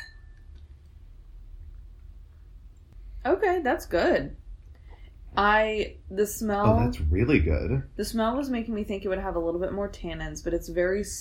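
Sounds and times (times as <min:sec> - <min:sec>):
wine glasses clinking in a toast during a wine tasting: 0:00.0 - 0:00.4
low steady room hum: 0:00.0 - 0:11.1
speech: 0:03.2 - 0:04.4, 0:05.4 - 0:11.1.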